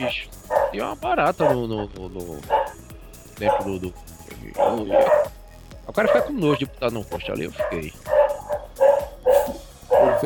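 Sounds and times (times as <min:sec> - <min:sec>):
dog barking: 0:00.0 - 0:01.7, 0:02.4 - 0:02.8, 0:03.4 - 0:03.9, 0:04.5 - 0:05.4, 0:06.0 - 0:06.5, 0:07.5 - 0:10.2
speech: 0:00.0 - 0:02.6, 0:03.4 - 0:05.3, 0:05.9 - 0:08.2.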